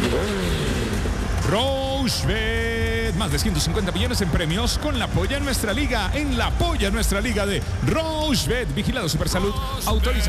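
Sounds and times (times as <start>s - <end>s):
motorcycle engine revving: 0.0s - 3.4s
speech: 1.5s - 10.2s.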